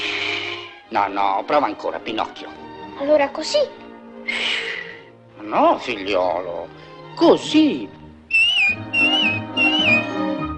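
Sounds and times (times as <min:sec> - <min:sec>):
soft low musical backing in an animated film clip: 0:00.0 - 0:10.5
speech: 0:00.9 - 0:04.5, 0:05.4 - 0:08.0
person whistling short bright phrases in an animated film clip: 0:08.3 - 0:10.2.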